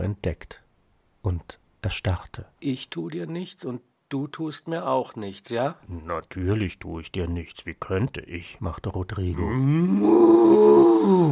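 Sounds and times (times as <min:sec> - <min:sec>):
speech: 0:00.0 - 0:00.6, 0:01.2 - 0:11.3
human voice imitating an angry cow's bellow: 0:09.4 - 0:11.3.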